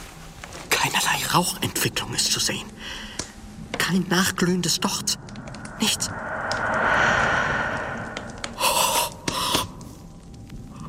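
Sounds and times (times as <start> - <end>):
soft hissing background: 0.0 - 10.8
speech: 0.9 - 3.2, 3.8 - 6.3
person breathing in and out: 2.8 - 3.4, 5.5 - 10.0.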